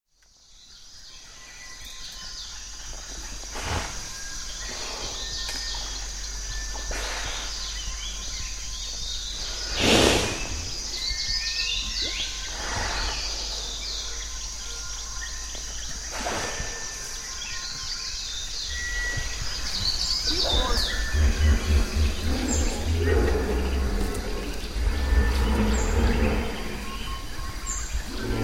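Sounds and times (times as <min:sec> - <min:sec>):
rainforest soundscape: 0:00.1 - 0:28.4
hippopotamus in rainforest: 0:03.3 - 0:15.0, 0:16.0 - 0:17.3, 0:18.7 - 0:28.4.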